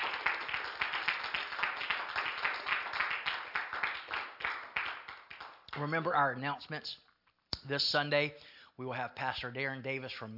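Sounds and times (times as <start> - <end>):
audience clapping at a church service: 0.0 - 6.3
speech: 5.8 - 7.0, 7.6 - 10.3.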